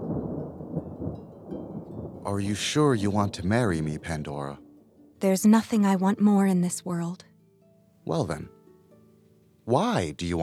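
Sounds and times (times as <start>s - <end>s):
deep rolling rumble of thunder: 0.0s - 4.6s
speech: 2.2s - 4.6s, 5.2s - 7.3s, 8.0s - 8.6s, 9.6s - 10.4s.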